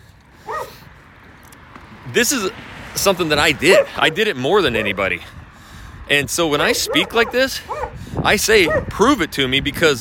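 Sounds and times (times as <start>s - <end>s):
dog bark or yip: 0.5s - 0.8s, 3.7s - 4.0s, 6.8s - 8.0s, 8.6s - 9.0s
speech: 2.1s - 5.4s, 6.1s - 9.9s.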